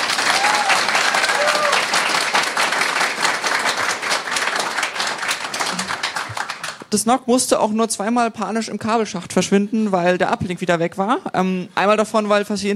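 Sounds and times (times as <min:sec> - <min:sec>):
crowd applauding: 0:00.0 - 0:06.9
speech: 0:06.9 - 0:12.7.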